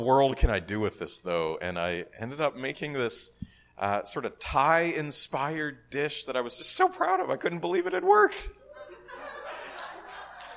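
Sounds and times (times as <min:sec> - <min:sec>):
speech: 0:00.0 - 0:08.6
audience chuckling and laughing: 0:08.6 - 0:10.5.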